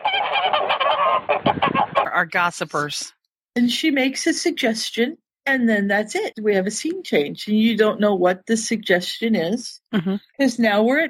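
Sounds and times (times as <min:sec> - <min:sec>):
goose honking in raspy nasal bursts: 0:00.0 - 0:02.2
speech: 0:02.2 - 0:11.0.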